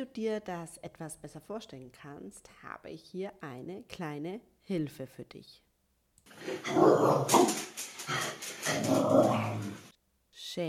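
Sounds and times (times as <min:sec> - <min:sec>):
speech: 0:00.0 - 0:05.7, 0:06.3 - 0:09.7
dog growling and barking: 0:06.4 - 0:09.9.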